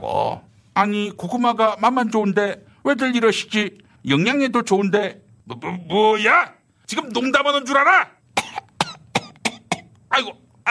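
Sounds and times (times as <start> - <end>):
speech: 0.8 - 8.2, 10.2 - 10.6
person coughing harshly: 8.4 - 9.9.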